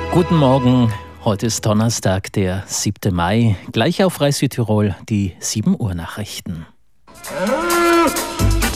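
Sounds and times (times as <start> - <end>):
speech: 0.1 - 8.2
bull lowing: 7.1 - 8.7.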